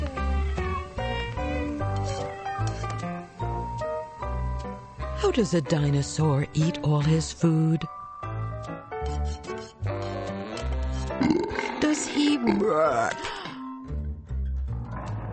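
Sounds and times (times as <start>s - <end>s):
steady music playing: 0.0s - 14.9s
speech: 5.2s - 8.0s
voice imitating a loud drawn-out burp: 9.9s - 13.4s.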